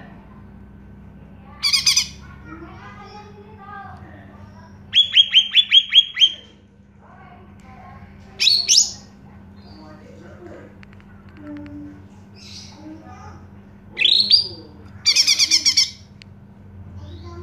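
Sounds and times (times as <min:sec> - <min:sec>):
greater green leafbird singing: 0:01.6 - 0:02.2, 0:04.6 - 0:06.5, 0:08.4 - 0:10.0, 0:13.9 - 0:16.1.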